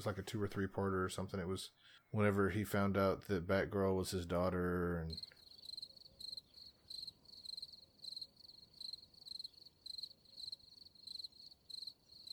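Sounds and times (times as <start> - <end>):
speech: 0.0 - 5.4
crickets chirping: 5.1 - 12.3.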